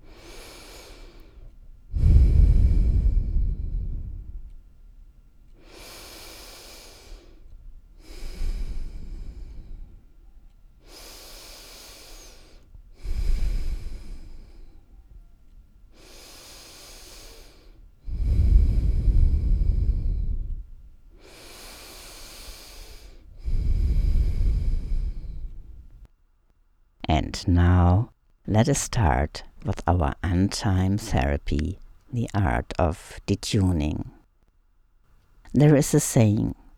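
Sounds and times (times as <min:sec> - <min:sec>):
people breathing slowly and deeply together: 0:00.0 - 0:04.8, 0:05.5 - 0:26.1
speech: 0:27.4 - 0:34.2, 0:35.5 - 0:36.6.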